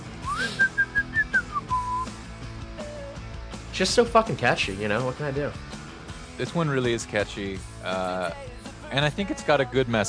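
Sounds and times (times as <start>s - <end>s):
faint music: 0.0s - 10.0s
person whistling a short lively tune: 0.2s - 2.2s
speech: 3.8s - 5.7s, 6.4s - 10.0s.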